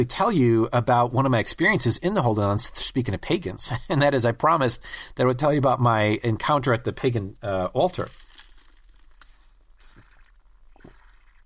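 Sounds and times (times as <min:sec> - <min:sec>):
speech: 0:00.0 - 0:08.2
sipping and swallowing water: 0:08.0 - 0:11.4.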